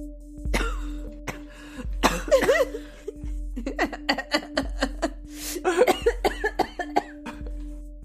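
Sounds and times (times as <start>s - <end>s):
laugh-like vocal sounds: 0.6s - 7.5s
person coughing: 0.6s - 7.6s
gasping breaths: 1.4s - 3.3s, 3.9s - 5.9s.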